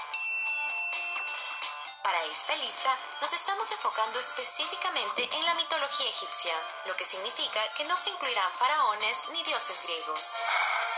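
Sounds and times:
bright notification bell sound effect: 0.0s - 2.0s
speech: 2.2s - 10.9s.

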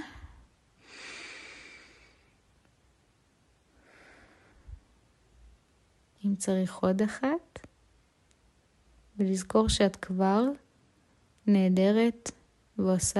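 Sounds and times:
slow deep breath drawn in: 0.0s - 2.4s, 3.7s - 4.9s
speech: 6.2s - 7.7s, 9.2s - 10.6s, 11.5s - 13.1s.

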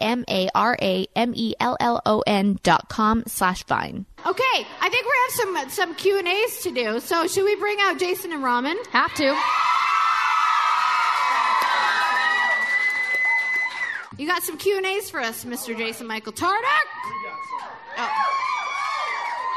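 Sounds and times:
speech: 0.0s - 9.8s, 14.2s - 18.5s
live audience cheering and whooping: 9.0s - 14.2s, 16.8s - 19.5s.

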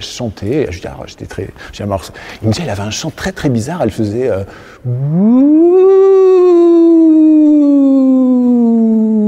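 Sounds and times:
speech: 0.1s - 7.0s
man's voice imitating an alarm siren: 4.8s - 9.2s.

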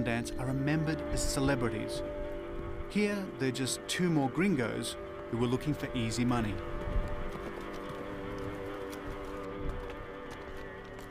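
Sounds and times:
speech: 0.0s - 2.3s, 2.9s - 6.8s
steady tonal backdrop: 0.0s - 11.0s
horse hooves clip-clopping: 5.0s - 11.0s.

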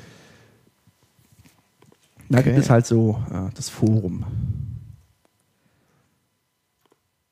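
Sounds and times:
speech: 2.3s - 4.6s
microphone being handled and turned: 4.0s - 5.1s
small click close to the mic: 6.8s - 7.0s.

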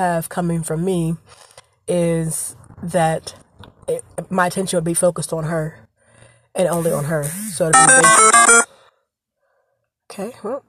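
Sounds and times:
speech: 0.0s - 5.8s, 6.6s - 8.6s, 10.2s - 10.6s
electronic phone alert beeps: 7.8s - 8.6s.

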